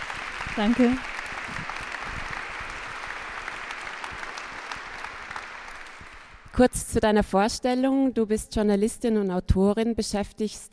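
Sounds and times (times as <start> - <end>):
audience applause: 0.0 - 6.5
speech: 0.6 - 1.6, 6.6 - 10.7.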